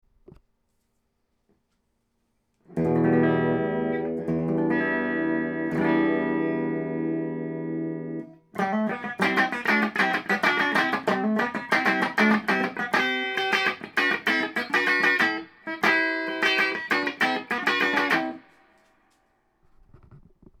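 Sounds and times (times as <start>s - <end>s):
Gibson Les Paul clean tone on 498T bridge pickup: 2.6s - 18.6s.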